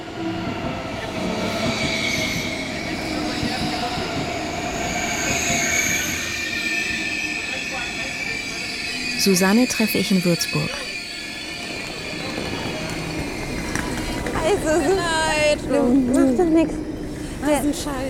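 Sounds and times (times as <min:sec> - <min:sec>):
express train wheels rumbling on rails: 0:00.0 - 0:18.0
high squealing tones of a train on rails: 0:01.4 - 0:13.8
speech: 0:09.2 - 0:10.9, 0:15.5 - 0:16.8, 0:17.4 - 0:18.0.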